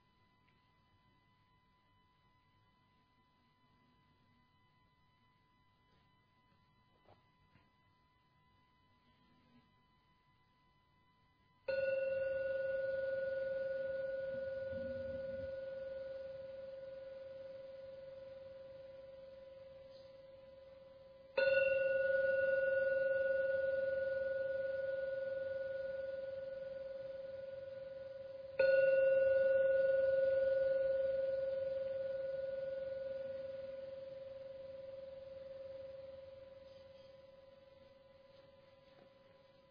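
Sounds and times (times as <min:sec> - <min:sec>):
meditation gong ringing: 0:11.7 - 0:38.0.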